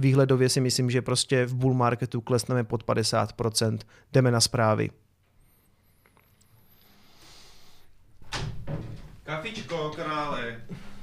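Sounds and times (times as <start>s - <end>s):
speech: 0.0s - 5.1s, 9.3s - 10.8s
quiet hiss: 2.3s - 11.0s
door opening: 8.2s - 9.3s.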